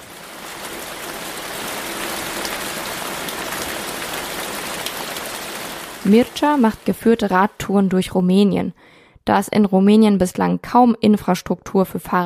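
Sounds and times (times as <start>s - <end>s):
steady rain: 0.0s - 8.0s
speech: 6.0s - 12.2s.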